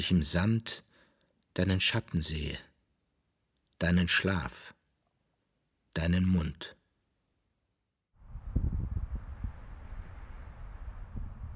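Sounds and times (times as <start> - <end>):
speech: 0.0 - 0.9, 1.6 - 2.7, 3.8 - 4.8, 6.0 - 6.8
heavy low wind gusts buffeting the microphone: 8.2 - 11.5.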